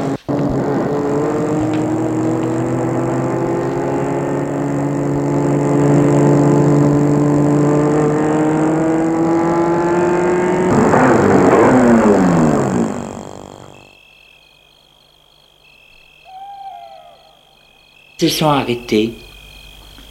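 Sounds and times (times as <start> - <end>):
car engine droning and winding down: 0.0 - 14.0
faint high squeak: 15.9 - 17.5
speech: 18.2 - 19.2.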